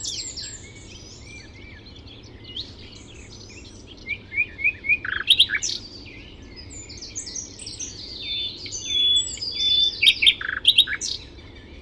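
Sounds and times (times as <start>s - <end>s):
common nightingale Luscinia megarhynchos singing whistles, chirps and clicking notes: 0.0s - 11.8s.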